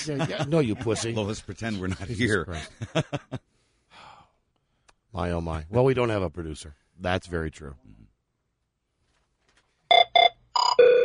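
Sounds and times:
laughter: 0.0 - 3.4
speech: 0.0 - 3.5, 5.2 - 8.0
telephone ringing with bright buzzing electronic bursts: 9.9 - 11.0.

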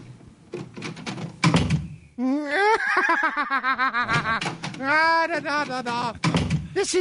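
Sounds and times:
door clunking and rattling as it is opened and shut: 0.0 - 2.1, 4.0 - 6.8
people laughing: 2.2 - 6.0
speech: 3.1 - 6.9.

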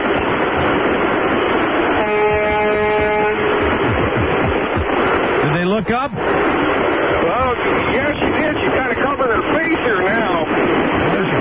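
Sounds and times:
constant road and engine rumble: 0.0 - 11.3
big truck air horn blast: 1.7 - 3.8.

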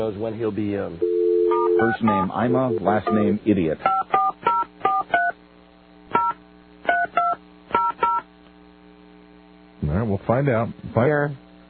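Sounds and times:
speech: 0.0 - 4.0, 10.2 - 11.4
faint hum: 0.0 - 11.6
touch-tone telephone dialing beeps: 1.0 - 3.2.

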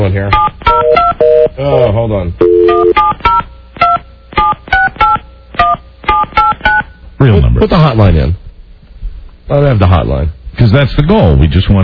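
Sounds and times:
speech: 0.0 - 0.5, 1.6 - 3.0, 7.2 - 8.4, 9.5 - 11.8
telephone keypad tones while dialing a pager: 2.4 - 6.9.

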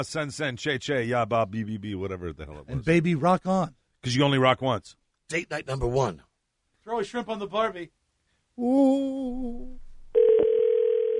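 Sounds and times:
speech: 0.0 - 6.3, 6.9 - 8.0, 8.6 - 9.8
telephone line ringing: 10.2 - 11.1.

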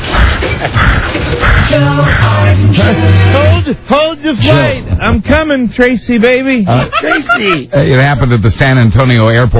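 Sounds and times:
car engine roaring: 0.1 - 3.9
speech: 2.7 - 9.5
laughter: 6.7 - 8.3.

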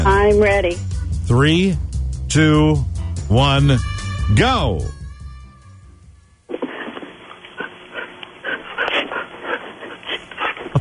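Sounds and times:
speech: 0.2 - 5.0
dog panting: 6.8 - 10.7.

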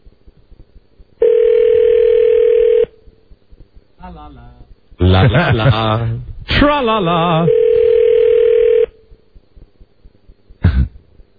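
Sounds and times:
quiet low noise: 0.0 - 11.3
telephone ringing tone on an outgoing call: 1.2 - 2.9, 7.4 - 9.0
speech: 4.2 - 7.6
laughter: 5.0 - 6.3.

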